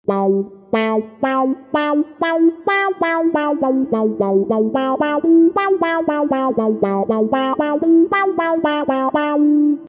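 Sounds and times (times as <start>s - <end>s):
rubbery wah effect: 0.0s - 9.8s.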